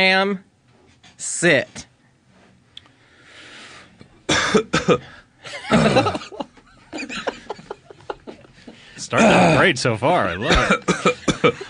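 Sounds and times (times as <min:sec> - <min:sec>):
speech: 0:00.0 - 0:00.5, 0:01.2 - 0:01.9, 0:04.5 - 0:07.3, 0:09.0 - 0:11.6
person coughing hard with deep hacking bursts: 0:04.3 - 0:06.3, 0:10.4 - 0:11.6
laughter: 0:05.4 - 0:09.2, 0:10.4 - 0:11.6.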